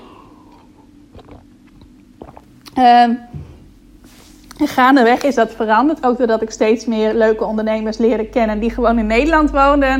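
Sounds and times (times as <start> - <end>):
steady low hum: 0.0 - 9.9
soft wet mouth clicks while sipping water: 1.1 - 2.8
speech: 2.8 - 3.4, 4.6 - 9.9.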